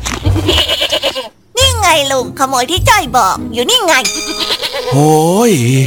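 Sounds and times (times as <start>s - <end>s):
goat bleating while eating vegetables in a garden plot: 0.3s - 1.4s, 4.1s - 5.1s
speech: 2.0s - 5.8s.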